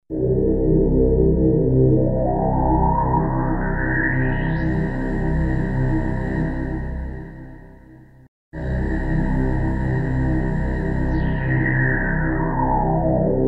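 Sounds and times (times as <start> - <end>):
dark voice on a Yamaha CS1x CS2x: 0.1 - 7.7, 8.6 - 13.4.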